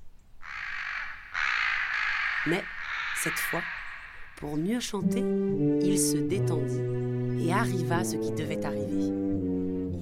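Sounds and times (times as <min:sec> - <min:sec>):
crow cawing loudly: 0:00.4 - 0:04.4
speech: 0:02.4 - 0:03.8, 0:04.4 - 0:09.5.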